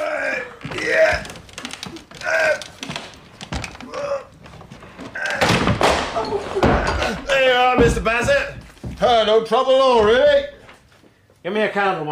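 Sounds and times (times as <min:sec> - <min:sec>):
locked door being forced open: 0:00.6 - 0:09.3
speech: 0:09.1 - 0:10.5, 0:11.4 - 0:12.1.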